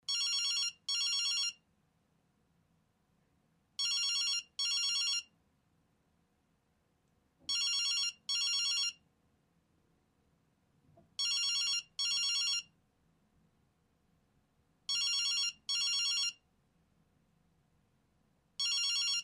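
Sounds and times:
cell phone ringing: 0.1s - 1.6s, 3.8s - 5.3s, 7.4s - 9.0s, 11.2s - 12.7s, 14.9s - 16.4s, 18.6s - 19.2s.

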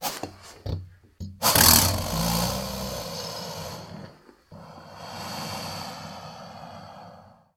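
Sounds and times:
alligator snorting: 1.4s - 6.2s.

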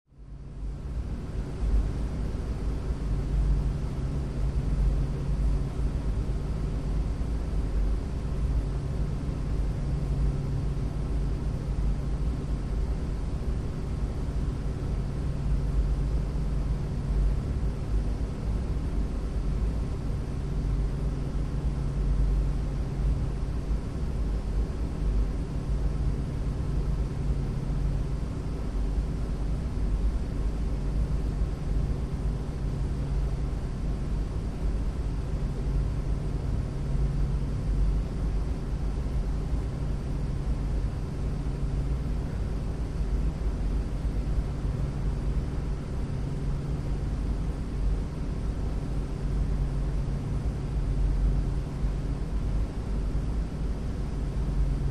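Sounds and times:
arena corridor ventilation in a large airy lobby area: 0.1s - 54.9s.

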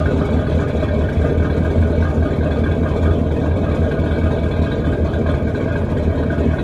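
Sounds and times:
V6 Chris Craft boat engine: 0.0s - 6.6s.

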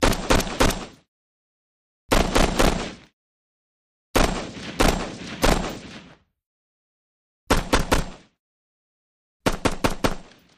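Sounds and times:
M16 rifle firing single shots: 0.0s - 1.0s, 2.1s - 3.1s, 4.2s - 6.2s, 7.5s - 8.3s, 9.5s - 10.5s.

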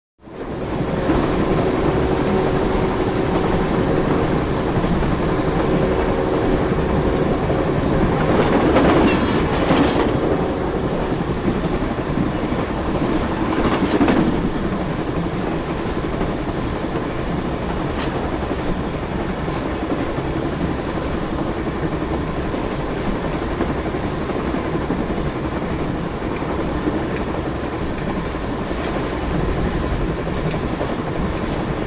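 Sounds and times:
passenger train exterior: 0.2s - 31.8s.

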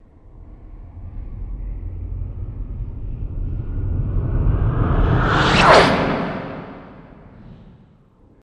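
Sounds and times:
starship flyby whoosh: 2.6s - 7.9s.

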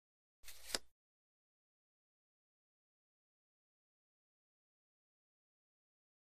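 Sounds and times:
playing card being picked up in a casino card game: 0.5s - 0.9s.

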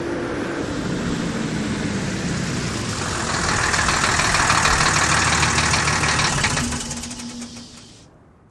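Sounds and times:
diesel truck stopping: 0.2s - 8.1s.

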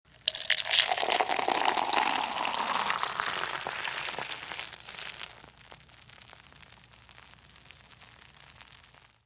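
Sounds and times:
beer pouring: 0.1s - 5.5s.

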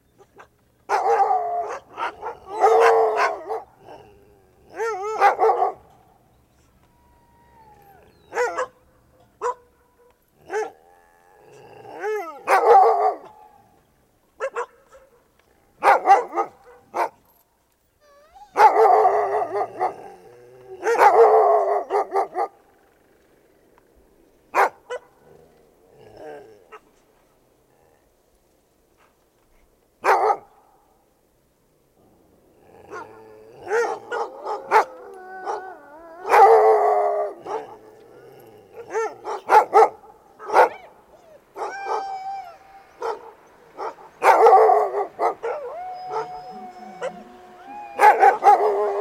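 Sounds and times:
dogs barking: 0.3s - 6.1s, 8.0s - 10.8s, 12.0s - 13.7s, 14.4s - 17.3s, 18.5s - 22.6s, 24.5s - 25.2s, 30.0s - 30.5s, 32.9s - 37.9s, 38.7s - 48.9s
dogs howling: 0.9s - 6.0s, 6.8s - 8.8s, 18.0s - 23.1s, 32.7s - 48.9s.

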